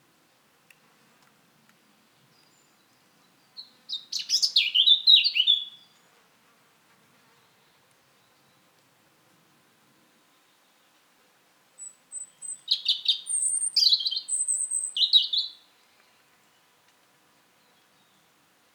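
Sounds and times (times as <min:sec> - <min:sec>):
European robin Erithacus rubecula singing: 0:02.4 - 0:06.0, 0:11.8 - 0:16.2.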